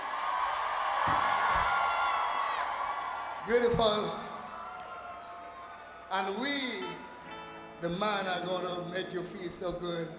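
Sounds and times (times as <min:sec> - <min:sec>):
crowd of women screaming and shrieking: 0:00.0 - 0:06.1
speech: 0:01.0 - 0:01.4, 0:03.4 - 0:04.2, 0:06.1 - 0:07.0, 0:07.8 - 0:10.1.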